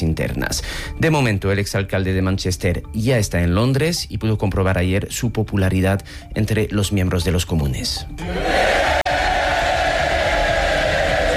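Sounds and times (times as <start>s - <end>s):
speech: 0.0s - 8.8s
members of the House of Commons shouting and cheering: 8.2s - 11.3s
members of the House of Commons applauding: 8.9s - 11.3s.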